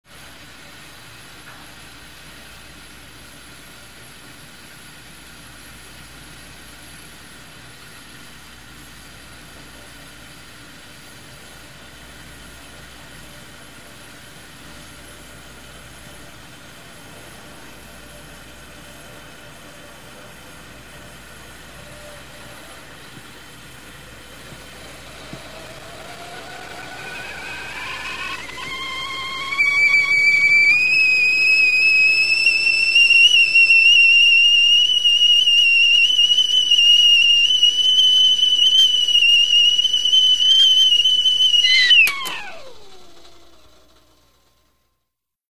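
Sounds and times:
kettle whistling: 0:00.2 - 0:45.0.

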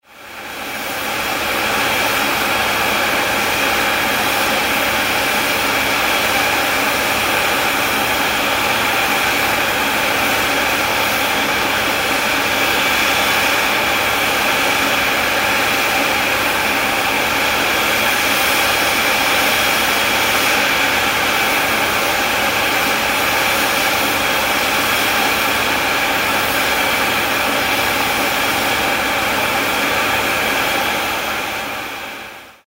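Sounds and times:
steam locomotive waiting at a station platform: 0:00.0 - 0:32.6.

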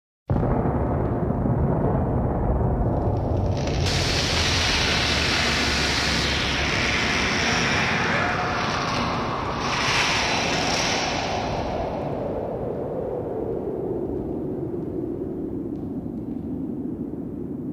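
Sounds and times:
explosion: 0:00.3 - 0:17.6.

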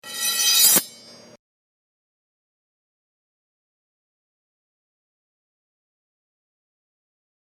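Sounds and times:
sharp knife: 0:00.0 - 0:01.4.

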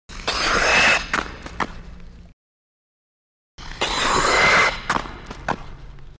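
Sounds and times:
skates braking: 0:00.2 - 0:01.8, 0:03.8 - 0:05.9.

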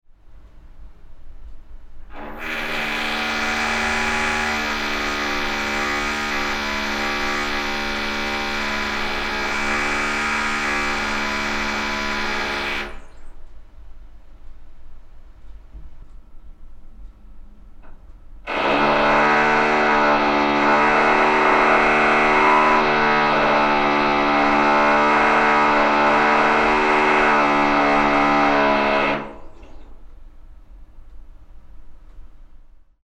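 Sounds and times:
drill: 0:02.1 - 0:13.2, 0:18.5 - 0:30.0.

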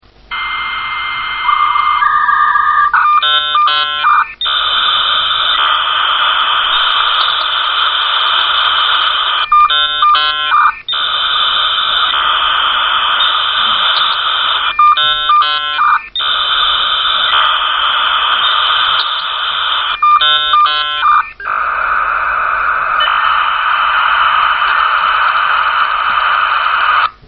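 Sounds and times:
modem connection sound: 0:00.3 - 0:27.2.

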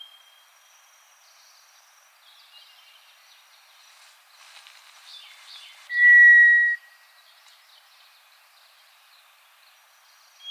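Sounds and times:
White's thrush whistling: 0:05.7 - 0:06.9.

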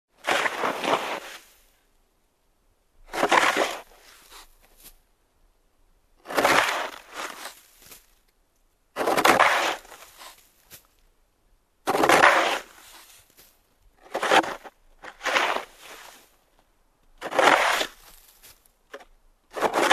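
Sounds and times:
shoveling snow: 0:00.2 - 0:01.7, 0:03.1 - 0:04.9, 0:06.2 - 0:08.1, 0:09.0 - 0:10.9, 0:11.9 - 0:16.4, 0:17.2 - 0:19.9.

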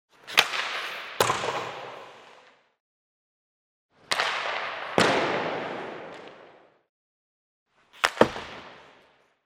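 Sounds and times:
puck hitting the boards: 0:00.2 - 0:02.5, 0:04.1 - 0:06.6, 0:08.0 - 0:09.2.

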